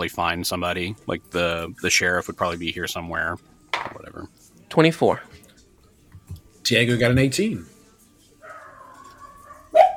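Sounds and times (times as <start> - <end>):
speech: 0.0 - 5.4, 6.7 - 7.7
dog whining: 8.4 - 9.9.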